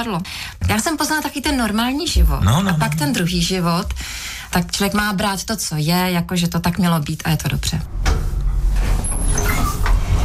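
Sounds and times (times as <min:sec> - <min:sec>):
speech: 0:00.0 - 0:08.2
elevator doors sliding open: 0:07.9 - 0:10.2.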